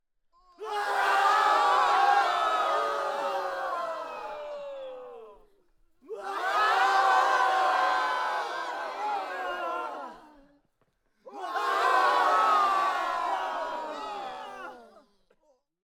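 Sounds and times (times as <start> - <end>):
outdoor group screaming in agony: 0.6 - 4.4, 6.2 - 10.2, 11.3 - 14.8
battle crowd: 0.6 - 5.4, 6.1 - 10.4, 11.3 - 15.0.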